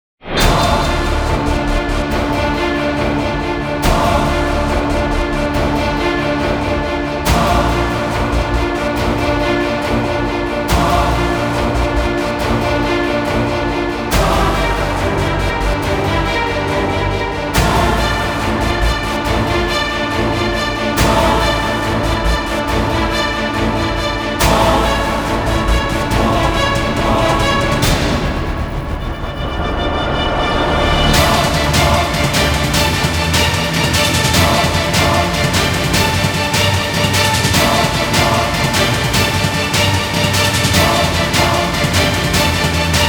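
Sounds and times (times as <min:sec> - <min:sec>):
battle music: 0:00.4 - 0:43.0.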